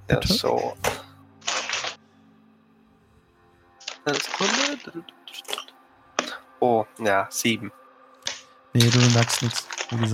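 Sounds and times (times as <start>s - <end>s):
speech: 0.1s - 1.0s, 4.1s - 5.4s, 6.6s - 7.8s, 8.7s - 10.1s
dice rattling and clattering across a hard surface: 3.8s - 4.9s, 8.3s - 10.1s.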